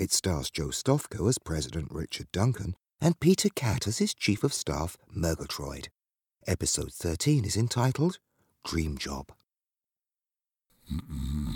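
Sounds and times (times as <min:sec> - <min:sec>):
speech: 0:00.0 - 0:09.4, 0:10.9 - 0:11.5
man snoring gently while dozing at his office desk: 0:10.8 - 0:11.5.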